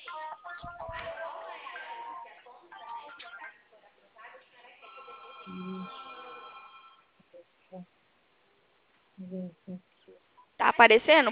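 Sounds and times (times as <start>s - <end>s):
cellphone ringing for an outgoing video call: 1.1s - 3.6s, 4.8s - 7.1s
speech: 5.5s - 6.0s, 7.7s - 8.0s, 9.2s - 10.0s, 10.7s - 11.3s.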